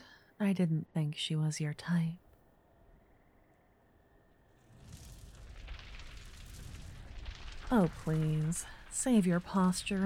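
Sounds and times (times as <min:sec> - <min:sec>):
speech: 0:00.4 - 0:02.2, 0:07.7 - 0:10.0
crackling magical elemental energy: 0:04.4 - 0:10.0.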